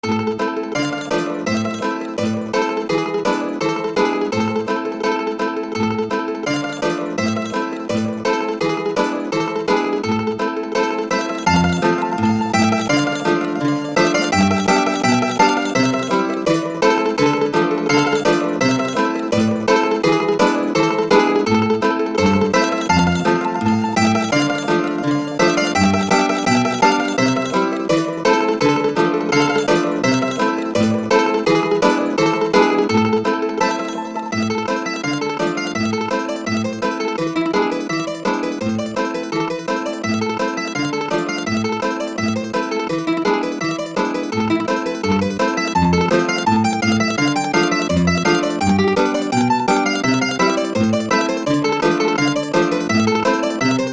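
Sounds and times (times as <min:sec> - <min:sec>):
mandolin tremolo: 0:00.0 - 0:53.9.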